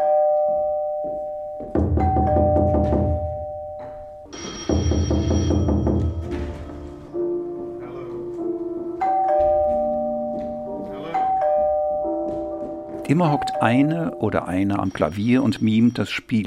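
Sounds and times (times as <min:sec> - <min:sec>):
doorbell ringing as stage sound effect: 0:00.0 - 0:06.7, 0:09.0 - 0:16.2
knocking on doors as stage sound effect: 0:01.6 - 0:06.9
sustained ringing chime tones: 0:02.3 - 0:06.2, 0:09.0 - 0:16.2
speech: 0:13.1 - 0:16.4.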